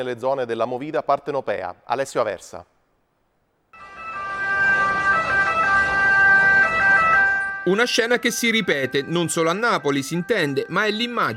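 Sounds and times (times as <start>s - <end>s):
speech: 0.0s - 2.7s, 7.7s - 11.3s
dense rumble of road traffic and idling engines: 3.8s - 8.2s
two-tone ambulance siren wailing in traffic: 3.8s - 11.3s.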